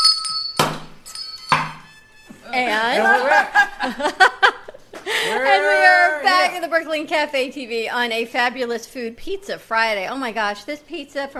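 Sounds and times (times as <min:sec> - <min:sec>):
bell ringing: 0:00.0 - 0:02.9
speech: 0:02.5 - 0:04.4, 0:06.5 - 0:11.3
laughter: 0:02.6 - 0:06.5.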